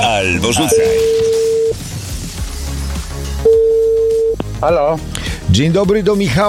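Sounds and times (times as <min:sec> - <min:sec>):
speech: 0:00.2 - 0:01.3, 0:04.6 - 0:06.4
telephone ringing tone through the line while dialing: 0:00.6 - 0:01.7, 0:03.5 - 0:04.3.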